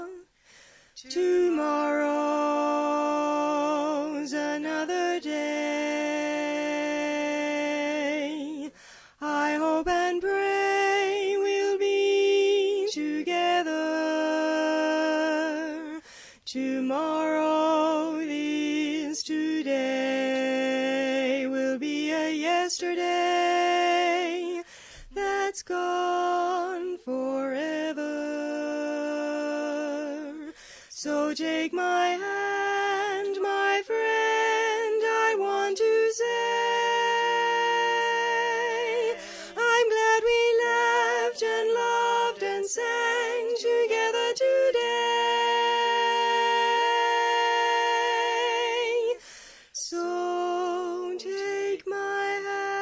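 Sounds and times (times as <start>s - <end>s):
lead vocal singing: 1.0s - 52.8s.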